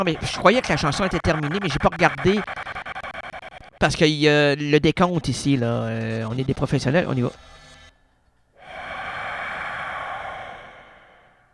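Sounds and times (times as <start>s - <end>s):
speech: 0.0s - 2.7s, 3.8s - 7.6s
strange unidentified long rushing breath sound: 0.0s - 11.5s.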